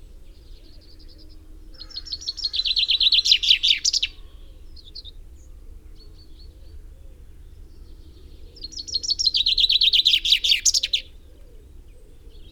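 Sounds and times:
common chaffinch Fringilla coelebs calls and descending trill: 0:01.8 - 0:05.1, 0:08.6 - 0:11.1.

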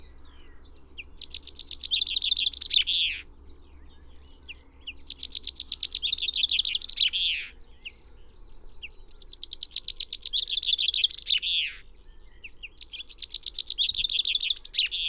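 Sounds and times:
common chaffinch Fringilla coelebs singing: 0:00.0 - 0:15.0.

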